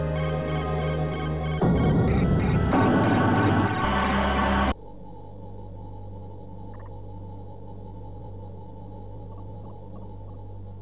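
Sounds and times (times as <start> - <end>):
filtered Amiga A500 intro sound: 0.2 - 4.7.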